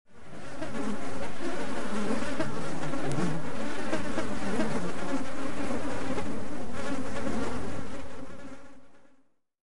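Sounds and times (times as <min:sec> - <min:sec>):
mosquitoes buzzing: 0:00.1 - 0:09.4.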